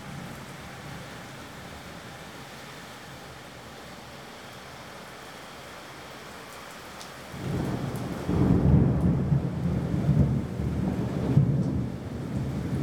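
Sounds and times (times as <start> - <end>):
rain hissing in a thunderstorm: 0.0 - 9.8
deep rolling thunder rumbling: 7.4 - 12.8.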